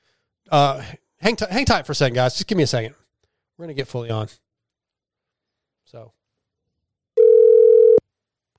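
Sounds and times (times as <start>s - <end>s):
speech: 0.5s - 3.0s, 3.6s - 4.4s, 5.9s - 6.2s
electronic phone ringback tone from an outgoing call: 7.2s - 8.0s.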